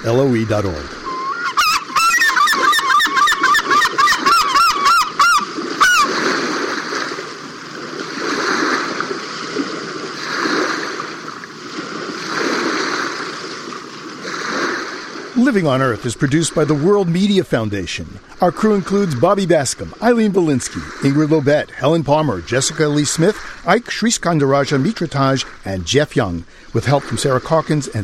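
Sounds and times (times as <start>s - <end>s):
speech: 0.0s - 1.0s, 15.5s - 28.0s
splashing and rushing water from bathing herring gull: 0.0s - 28.0s
bathing herring gull calling: 0.8s - 6.4s.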